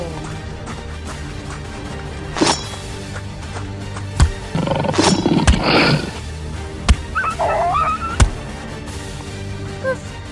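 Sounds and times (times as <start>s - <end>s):
wolf hit by an arrow snarling and roaring in a fight: 4.4s - 6.3s, 7.0s - 8.4s.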